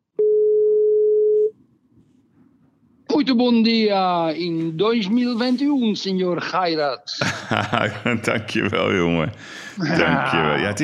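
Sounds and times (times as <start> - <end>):
telephone dial tone while placing a call: 0.2 - 1.5
speech: 3.3 - 10.8
laughter: 7.2 - 8.8, 9.8 - 10.6.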